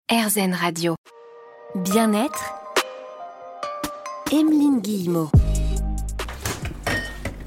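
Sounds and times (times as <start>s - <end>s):
speech: 0.1s - 2.6s, 4.3s - 5.5s
refrigerator door thunking open: 6.2s - 7.4s
glass bottles knocking together: 6.7s - 7.4s.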